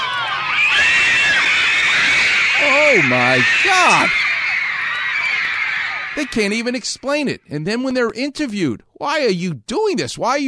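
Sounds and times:
large crowd of fans screaming and yelling: 0.0 - 7.1
speech: 2.9 - 4.2, 6.2 - 10.4.

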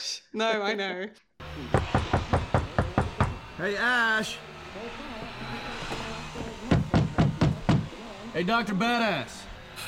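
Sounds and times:
speech: 0.3 - 2.0, 3.6 - 5.2, 8.4 - 9.4
knocking on a door: 1.7 - 3.4, 6.7 - 7.9.

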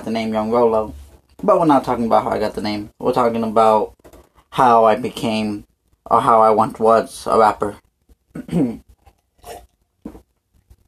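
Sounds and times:
speech: 0.1 - 7.8, 8.4 - 9.6
slurping sip from a drink: 8.9 - 10.2.

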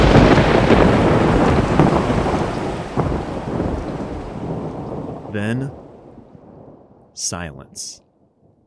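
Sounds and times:
heavy pouring rain: 0.0 - 8.0
loud thunder roaring and rolling: 0.0 - 8.6
speech: 5.4 - 5.8, 7.2 - 8.0.

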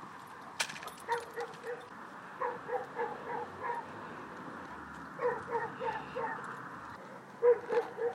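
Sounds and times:
dog yelping barks: 1.0 - 3.9, 5.2 - 6.5, 7.4 - 8.1.

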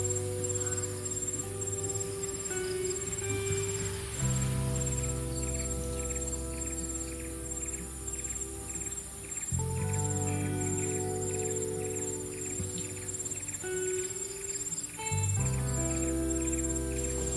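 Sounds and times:
calm lofi music with soft low chords and gentle ticking beat: 0.0 - 17.3
faint hiss resembling rain or surf: 0.0 - 17.3.

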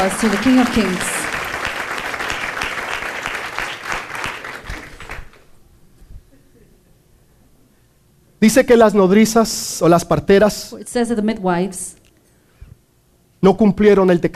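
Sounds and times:
speech: 0.0 - 1.2, 8.4 - 12.0, 13.4 - 14.3
loud audience applause: 0.0 - 5.5.

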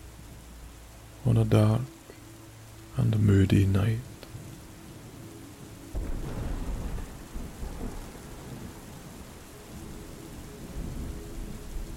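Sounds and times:
steady rain pattering in a storm: 0.0 - 11.9
speech: 1.2 - 2.0, 3.0 - 4.1
deep thunder rumbling in a storm: 5.9 - 11.9.

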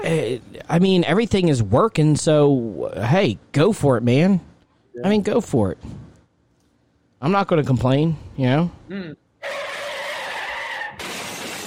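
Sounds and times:
speech: 0.0 - 6.0, 7.2 - 9.7
car tire screech: 9.4 - 11.0
car crash: 10.2 - 11.6
glass shattering: 11.0 - 11.6.

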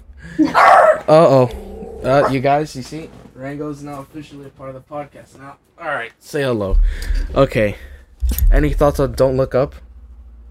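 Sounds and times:
speech: 0.3 - 7.9, 8.5 - 9.8
dog barking and yelping: 0.4 - 1.1, 2.0 - 2.4.

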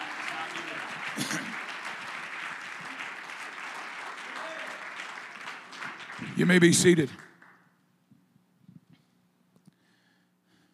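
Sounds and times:
crowd applauding with dense overlapping hand claps: 0.0 - 7.7
speech: 1.2 - 1.7, 6.2 - 7.3.

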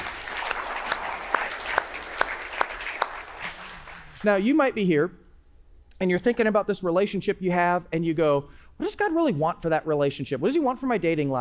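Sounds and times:
room full of people applauding: 0.0 - 4.3
speech: 4.2 - 5.2, 6.0 - 11.4.

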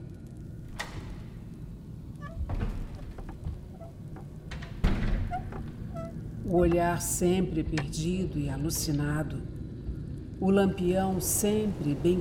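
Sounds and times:
dull rumble: 0.0 - 12.1
soft creaks: 0.2 - 7.0
door opening indoors with a low thud: 2.2 - 6.2
speech: 6.5 - 9.6, 10.4 - 12.1.

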